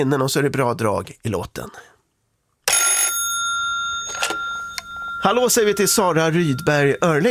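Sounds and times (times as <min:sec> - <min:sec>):
speech: 0:00.0 - 0:01.9, 0:05.2 - 0:07.2
telephone ringing with a bright electronic trill for an incoming call: 0:02.7 - 0:07.2.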